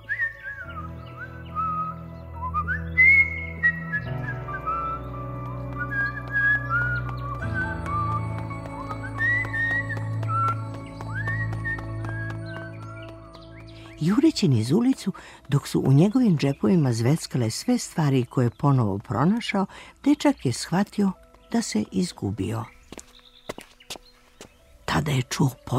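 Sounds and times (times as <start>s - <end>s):
boy whistling a melody: 0.0s - 7.8s, 8.8s - 12.4s
soft steady musical accompaniment: 0.0s - 25.7s
speech: 14.0s - 22.8s, 24.9s - 25.7s.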